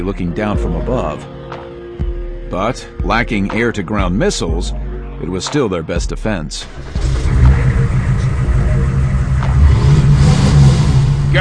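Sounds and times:
speech: 0.0 - 1.4, 2.5 - 7.2
Hummer engine starting and revving: 6.6 - 11.4.

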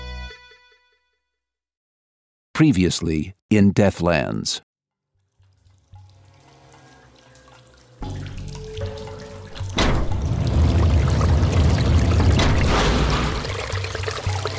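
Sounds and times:
speech: 2.6 - 4.7
water gushing and gurgling as it drains under a heavy security door: 5.2 - 14.5.

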